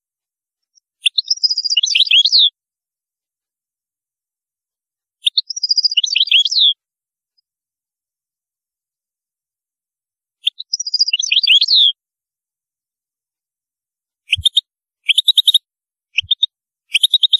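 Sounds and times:
European goldfinch song: 0:00.0 - 0:02.6, 0:05.2 - 0:07.5, 0:10.4 - 0:12.0, 0:14.2 - 0:17.3.

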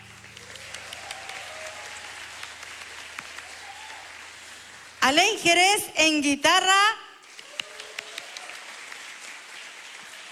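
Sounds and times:
audience applause at a concert in Temuco: 0:00.0 - 0:05.0, 0:07.2 - 0:10.2
speech: 0:05.1 - 0:07.0.

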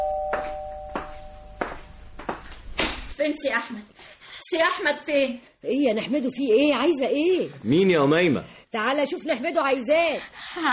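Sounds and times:
doorbell ringing: 0:00.0 - 0:01.6
speech: 0:03.2 - 0:10.7.

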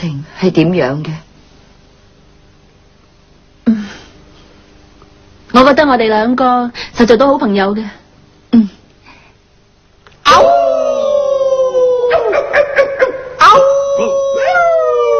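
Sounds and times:
speech: 0:00.0 - 0:01.2, 0:05.5 - 0:08.7, 0:10.3 - 0:10.6
cartoon dog howling: 0:10.3 - 0:15.1
cartoon dog barking: 0:12.1 - 0:14.6.

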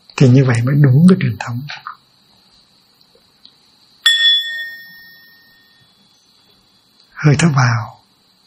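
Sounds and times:
speech: 0:00.2 - 0:01.9, 0:07.2 - 0:08.0
Buddhist meditation bell being struck: 0:04.0 - 0:06.2.

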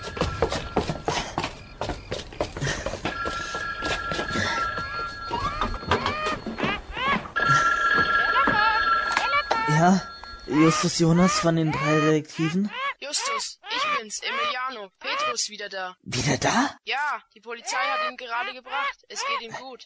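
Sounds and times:
telephone bell ringing: 0:00.0 - 0:01.2, 0:03.0 - 0:12.2
knocks and thumps: 0:00.0 - 0:09.7
speech: 0:09.8 - 0:13.2, 0:15.4 - 0:19.8.

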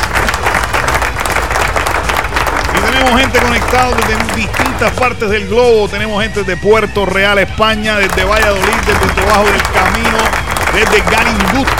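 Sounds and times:
applause from many hands during a live program: 0:00.0 - 0:05.3, 0:08.0 - 0:11.7
speech: 0:03.3 - 0:11.7.

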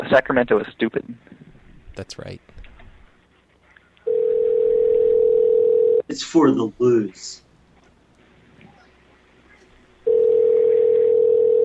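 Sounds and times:
speech: 0:00.0 - 0:01.3, 0:02.0 - 0:02.5, 0:06.1 - 0:07.4
electronic telephone ring tone: 0:04.1 - 0:06.0, 0:10.0 - 0:11.6.

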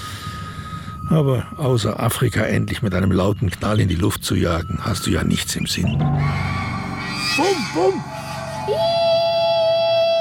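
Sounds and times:
speech: 0:01.1 - 0:06.6, 0:07.4 - 0:08.1, 0:08.7 - 0:09.1
boy screaming in his sleep while sitting up in bed: 0:08.6 - 0:10.2.

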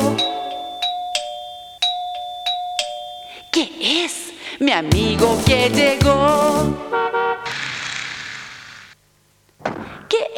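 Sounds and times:
doorbell ringing with bright two-tone chimes: 0:00.0 - 0:03.7
speech: 0:03.8 - 0:07.6.

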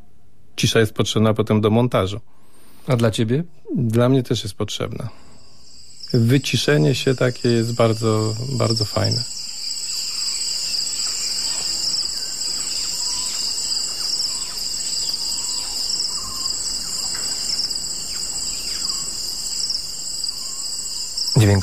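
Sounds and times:
speech: 0:00.6 - 0:05.2, 0:06.1 - 0:09.4
cicadas droning in remote Ethiopian wilderness: 0:02.5 - 0:21.6
faint chirping calls of wild animals in Ethiopian wilderness: 0:04.8 - 0:21.6.

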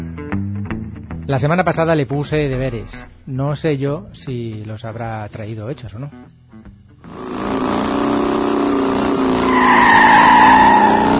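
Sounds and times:
speech: 0:01.3 - 0:06.4
car tires skidding and squealing: 0:07.1 - 0:11.1.

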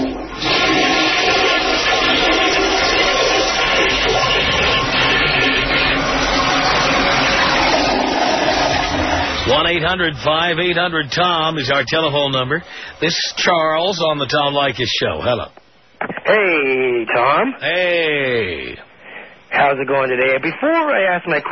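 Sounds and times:
toilet flushing: 0:00.0 - 0:15.4
speech: 0:09.7 - 0:15.6, 0:16.3 - 0:18.9, 0:19.5 - 0:21.5.

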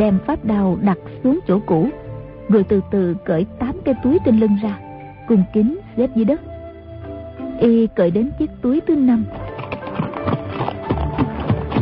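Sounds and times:
speech: 0:00.0 - 0:06.5, 0:07.6 - 0:09.5
horse hooves galloping: 0:09.2 - 0:11.8.

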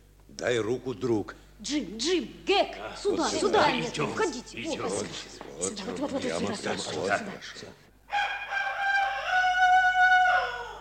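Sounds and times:
speech: 0:00.4 - 0:08.2
rooster crowing: 0:08.1 - 0:10.7.

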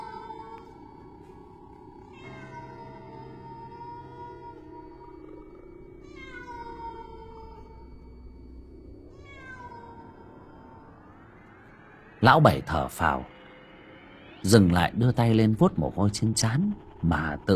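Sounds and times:
stray cat yowling: 0:00.0 - 0:00.8, 0:02.0 - 0:08.0, 0:09.1 - 0:11.0
steady low rumble: 0:00.6 - 0:17.5
speech: 0:12.2 - 0:13.4, 0:14.4 - 0:17.5.

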